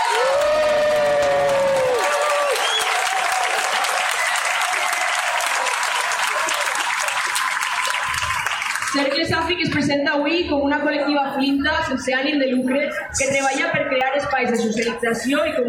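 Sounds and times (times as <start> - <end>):
crowd whooping and cheering: 0.0 - 9.2
audience applause: 0.0 - 9.3
speech: 9.5 - 15.6.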